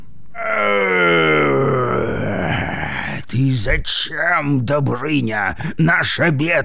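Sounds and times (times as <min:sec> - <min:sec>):
dragon roaring in a long growling bellow: 0:00.4 - 0:03.1
speech: 0:03.5 - 0:06.6.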